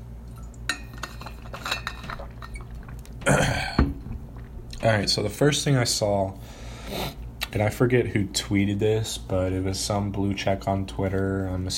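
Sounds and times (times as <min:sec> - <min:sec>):
cup clinking while being handled: 0:00.4 - 0:04.8
cup set down with a soft knock: 0:03.7 - 0:04.2
speech: 0:04.8 - 0:11.7.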